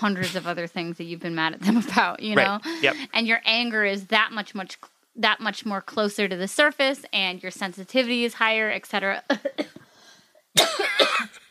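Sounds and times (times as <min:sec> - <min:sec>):
speech: 0:00.0 - 0:09.8
person coughing: 0:10.6 - 0:11.4.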